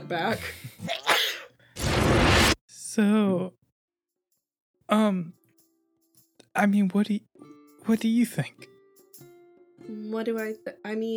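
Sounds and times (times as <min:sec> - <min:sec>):
speech: 0:00.1 - 0:01.0, 0:03.0 - 0:03.6, 0:04.9 - 0:05.4, 0:06.6 - 0:07.3, 0:07.9 - 0:08.7, 0:09.9 - 0:11.1
voice imitating a sneeze: 0:00.9 - 0:01.5.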